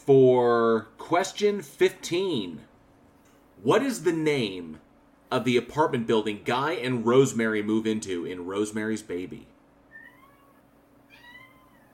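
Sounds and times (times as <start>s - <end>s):
speech: 0.0s - 2.7s, 3.6s - 9.5s
low steady hum: 0.0s - 11.9s
domestic cat meowing: 9.9s - 11.9s.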